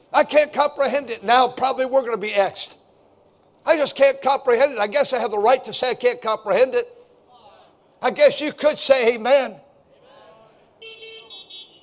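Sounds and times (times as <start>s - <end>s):
speech: 0.1s - 2.8s, 3.6s - 7.0s, 8.0s - 9.7s
car horns honking in short loud blasts: 10.8s - 11.8s.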